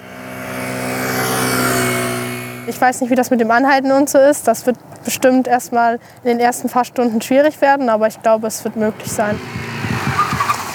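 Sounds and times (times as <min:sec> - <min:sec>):
car engine hum during a swerve without braking: 0:00.0 - 0:05.2, 0:05.9 - 0:10.7
car road noise: 0:00.0 - 0:10.7
speech: 0:02.7 - 0:09.9.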